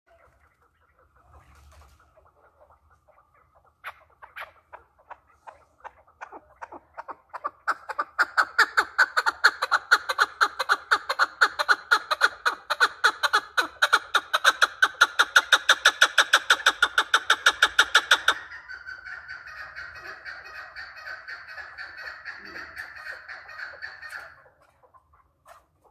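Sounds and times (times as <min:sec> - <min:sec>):
male chukar partridge call: 0:00.1 - 0:25.8.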